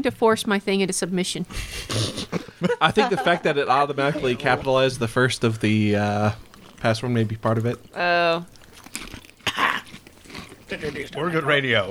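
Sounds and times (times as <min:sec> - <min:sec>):
speech: 0:00.0 - 0:09.2, 0:10.7 - 0:11.9
low murmur of room noise: 0:00.0 - 0:11.9
crunching and chewing of crisp crackers: 0:01.5 - 0:02.6, 0:04.0 - 0:11.6
laughter: 0:01.5 - 0:05.3.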